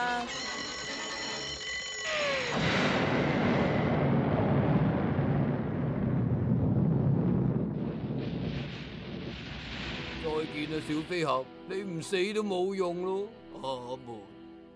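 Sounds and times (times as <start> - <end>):
speech: 0.0 - 0.6, 10.6 - 14.4
descending whistle tones in an old animated cartoon: 0.1 - 2.7
cartoon bomb exploding in an old animated cartoon: 2.4 - 11.3.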